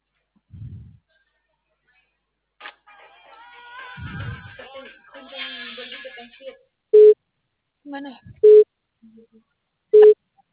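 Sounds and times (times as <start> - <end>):
speech: 7.9 - 8.4
telephone busy signal: 8.4 - 8.6, 10.0 - 10.2.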